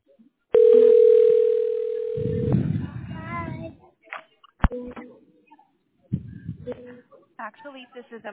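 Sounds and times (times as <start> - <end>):
telephone dial tone while a call is placed: 0.6 - 2.3
speech: 7.5 - 8.3.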